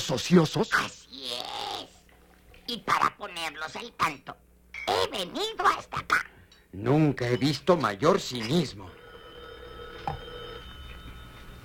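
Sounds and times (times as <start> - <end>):
speech: 0.0 - 1.5, 2.7 - 9.0
telephone ringing: 8.4 - 11.6.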